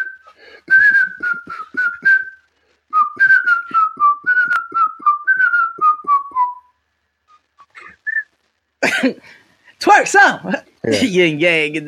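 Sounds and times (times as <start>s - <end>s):
person whistling a tune: 0.0s - 8.3s
speech: 9.0s - 11.8s.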